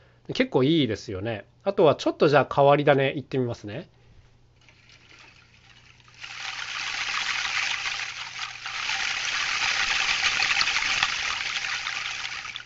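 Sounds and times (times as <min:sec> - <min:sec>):
speech: 0:00.3 - 0:04.0
hanging plastic straws of various lengths jostling together: 0:04.6 - 0:12.6.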